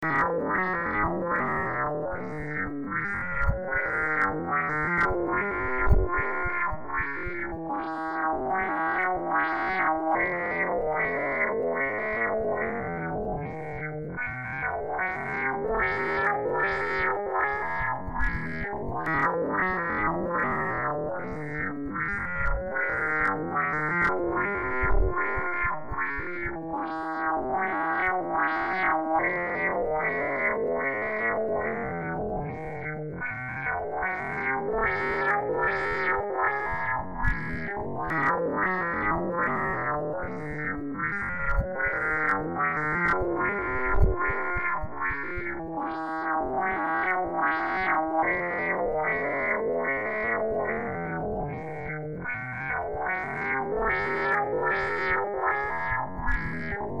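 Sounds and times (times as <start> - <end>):
noise: 0.0 - 56.9.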